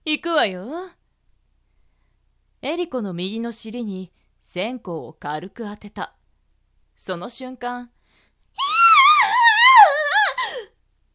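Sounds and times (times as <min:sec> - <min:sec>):
speech: 0:00.1 - 0:01.0, 0:02.6 - 0:06.2, 0:07.0 - 0:08.0
woman screaming in pain from a light burn: 0:08.6 - 0:10.7.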